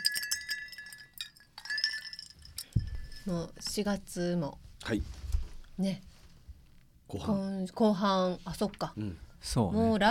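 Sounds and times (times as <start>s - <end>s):
glasses clinking together in a toast: 0.0s - 3.6s
speech: 3.2s - 5.2s, 5.8s - 6.1s, 7.1s - 10.0s.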